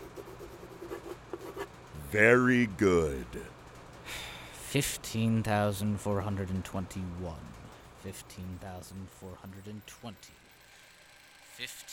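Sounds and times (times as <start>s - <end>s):
pencil scratching on paper while signing a document: 0.0s - 1.7s
speech: 2.1s - 3.5s, 4.7s - 10.4s, 11.6s - 11.9s.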